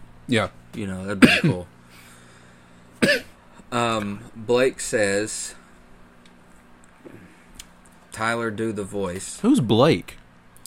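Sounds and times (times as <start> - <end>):
speech: 0.3 - 1.8, 3.1 - 5.6, 8.2 - 10.2
single forceful cough: 1.2 - 1.6, 3.0 - 3.4.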